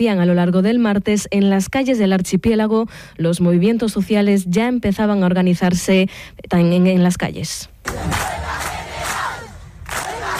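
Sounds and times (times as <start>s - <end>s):
speech: 0.0s - 8.6s
crowd chanting together outdoors at a street assembly: 7.8s - 10.3s.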